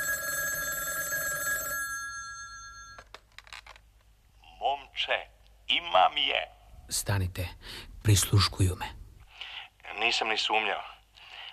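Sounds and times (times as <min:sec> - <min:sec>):
old telephone bell ringing: 0:00.0 - 0:03.1
speech: 0:05.0 - 0:09.0, 0:10.0 - 0:10.9.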